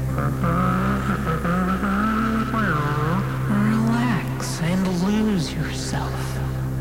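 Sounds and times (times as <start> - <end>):
speech: 0.2 - 0.9
voice imitating a roaring monster truck engine: 0.2 - 6.7.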